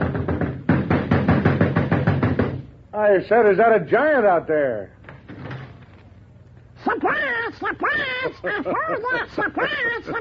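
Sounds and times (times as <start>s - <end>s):
hard knocking on a door: 0.0s - 2.7s
speech: 3.1s - 5.0s, 6.8s - 10.1s
laughter: 7.0s - 10.1s.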